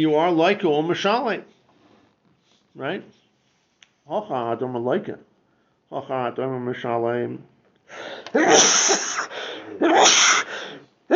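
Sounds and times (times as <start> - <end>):
speech: 0.0 - 1.6, 2.8 - 3.2, 4.1 - 5.3, 5.9 - 11.1
loud sneezes: 8.3 - 11.1.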